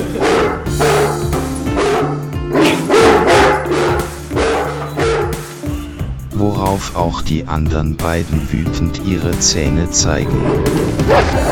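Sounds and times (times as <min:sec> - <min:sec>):
startled dog barking in a meadow: 0:00.2 - 0:01.2, 0:01.8 - 0:05.4
speech: 0:06.8 - 0:11.5.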